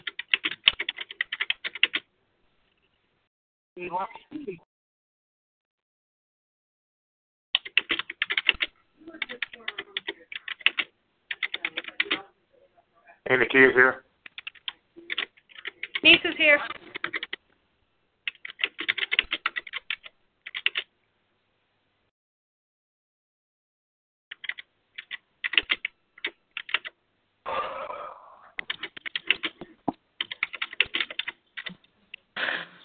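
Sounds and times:
typing on a computer keyboard: 0.0 - 2.0, 7.6 - 12.2, 14.3 - 17.4, 18.3 - 20.9, 24.3 - 27.0, 28.6 - 31.8
speech: 3.8 - 4.7, 13.3 - 14.0, 16.4 - 16.8.

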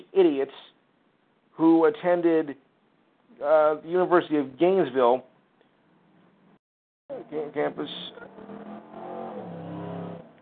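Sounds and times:
speech: 0.2 - 0.7, 1.6 - 2.6, 3.4 - 5.3, 7.1 - 8.7
motorcycle engine revving and roaring past outside a window: 7.2 - 10.3.

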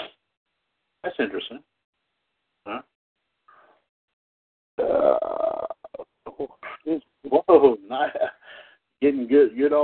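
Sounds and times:
speech: 1.1 - 1.8, 9.0 - 9.8
loud drawn-out belch: 4.8 - 7.0.

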